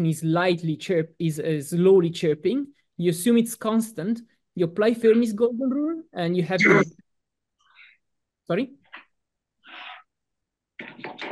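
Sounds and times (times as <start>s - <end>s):
speech: 0.0s - 7.0s, 8.5s - 8.8s
person coughing during a physics lecture: 6.6s - 6.9s.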